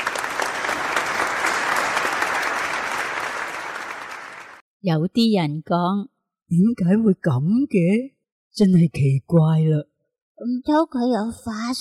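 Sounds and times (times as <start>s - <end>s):
sizable crowd applauding and cheering: 0.0s - 4.6s
speech: 4.8s - 11.7s.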